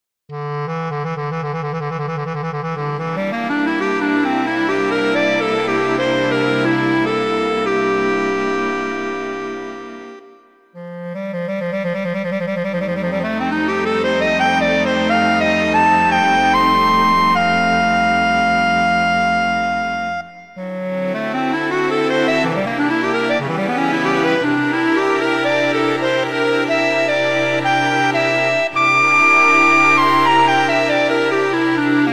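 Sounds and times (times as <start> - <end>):
clarinet: 0.3 - 32.1.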